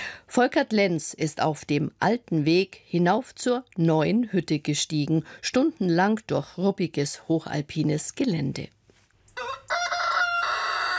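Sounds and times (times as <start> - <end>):
speech: 0.4 - 8.8
rooster crowing at a mountain inn in a high alpine valley: 9.4 - 10.9.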